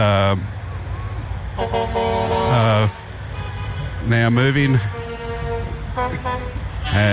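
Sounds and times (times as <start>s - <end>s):
speech: 0.0s - 0.6s, 1.6s - 3.0s, 4.0s - 5.0s, 6.0s - 7.1s
truck engines rumbling at a parade: 0.0s - 7.1s
truck horns honking at a parade: 0.0s - 7.1s.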